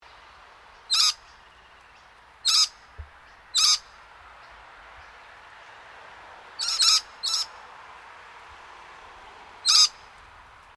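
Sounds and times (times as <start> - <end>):
scaly-breasted lorikeet shrill screeches: 0.9 - 1.2, 2.5 - 2.8, 3.6 - 3.9, 6.6 - 7.5, 9.6 - 10.0.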